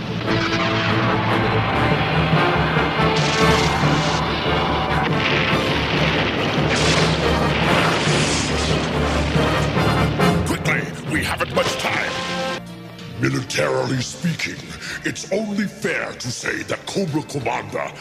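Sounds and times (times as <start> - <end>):
torpedo explosion against an oil tanker: 0.0 - 12.6
speech: 13.6 - 17.9.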